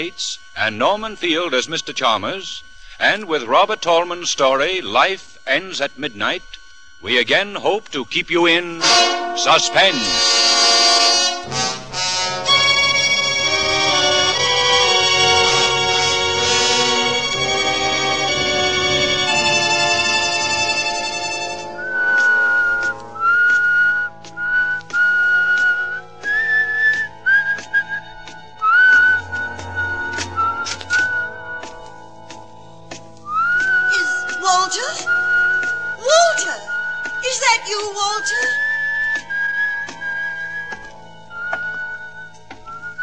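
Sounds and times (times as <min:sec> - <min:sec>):
speech: 0:00.0 - 0:10.6
low hum: 0:00.0 - 0:43.0
man whistling a wavering tune with slides and trills: 0:21.8 - 0:31.9, 0:33.2 - 0:34.4, 0:35.0 - 0:37.2, 0:38.2 - 0:43.0.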